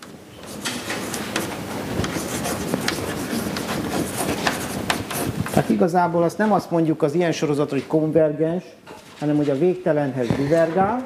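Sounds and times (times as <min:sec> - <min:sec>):
handwriting strokes writing brackets: 0:00.4 - 0:05.7
speech: 0:05.6 - 0:11.0.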